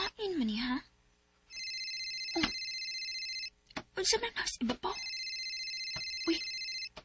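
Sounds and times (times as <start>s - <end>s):
cellphone ringing above the ceiling: 1.5s - 3.6s, 4.9s - 7.0s
speech: 4.0s - 5.1s.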